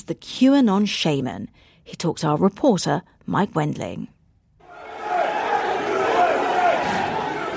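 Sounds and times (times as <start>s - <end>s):
speech: 0.1s - 4.2s
large crowd of rioters shouting and roaring at the U.S. Capitol: 4.6s - 7.5s
rioters yelling: 4.6s - 7.5s.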